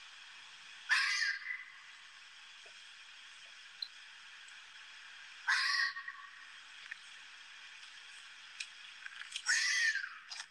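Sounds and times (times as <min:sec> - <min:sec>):
fox screaming: 0:00.9 - 0:01.7, 0:05.5 - 0:06.3, 0:09.4 - 0:10.3.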